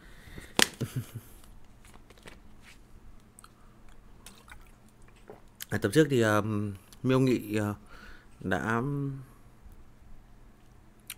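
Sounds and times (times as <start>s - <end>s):
speech: 1.0s - 1.4s, 5.7s - 7.8s, 8.4s - 9.3s
person taking a sip of water: 3.4s - 5.6s.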